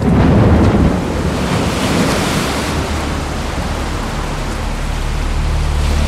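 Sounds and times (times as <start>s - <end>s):
thunder over a stormy sea: 0.0s - 4.5s
heavy waves surging on a stormy sea: 0.0s - 6.0s
wind buffeting at sea: 0.0s - 6.0s.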